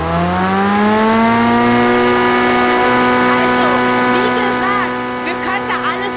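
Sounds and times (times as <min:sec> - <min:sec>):
leaf blower engine running: 0:00.0 - 0:06.1.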